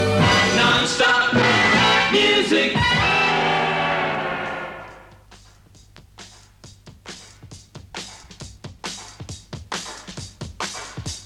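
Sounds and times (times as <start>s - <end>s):
radio jingle: 0.2s - 5.1s.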